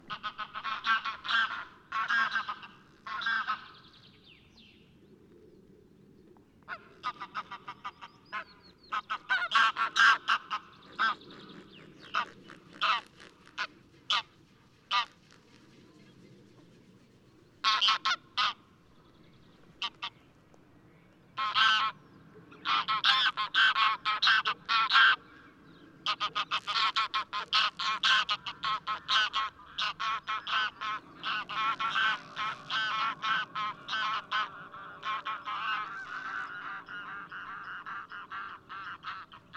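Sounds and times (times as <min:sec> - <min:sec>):
greylag goose Anser flight call: 0:00.0 - 0:03.8, 0:06.7 - 0:15.7, 0:17.6 - 0:18.7, 0:21.4 - 0:22.0, 0:22.6 - 0:25.2, 0:26.0 - 0:39.5.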